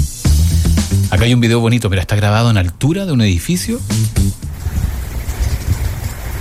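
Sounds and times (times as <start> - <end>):
speech: 1.2 - 4.4
heavy rain: 4.4 - 6.3.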